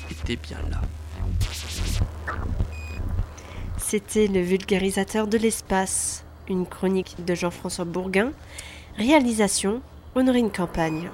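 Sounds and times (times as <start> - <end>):
Sputnik 1 satellite radio transmitter beeping: 0.0 - 3.8, 10.8 - 11.1
constant low rumble and hiss: 0.0 - 11.1
speech: 0.3 - 2.8, 3.9 - 11.1.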